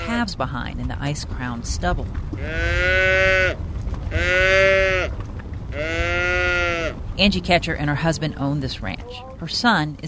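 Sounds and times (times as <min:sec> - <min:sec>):
hungry cattle mooing at feeding time: 0:00.0 - 0:00.4, 0:02.4 - 0:07.0
steady low outdoor rumble: 0:00.0 - 0:10.0
speech: 0:00.2 - 0:03.4, 0:07.2 - 0:10.0.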